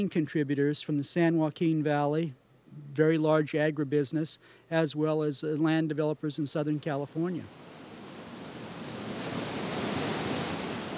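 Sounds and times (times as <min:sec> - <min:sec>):
speech: 0:00.0 - 0:07.8
sea waves washing and pounding against rocks: 0:07.4 - 0:10.9.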